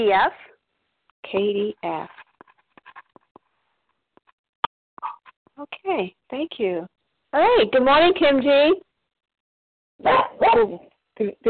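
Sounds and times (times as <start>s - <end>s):
speech: 0.0s - 0.5s, 1.2s - 2.2s, 5.6s - 8.9s, 10.0s - 11.4s
dog barking: 10.0s - 10.9s.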